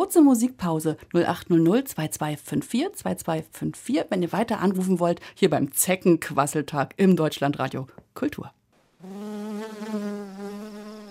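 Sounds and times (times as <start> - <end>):
speech: 0.0 - 10.7
large fly buzzing: 9.0 - 11.0.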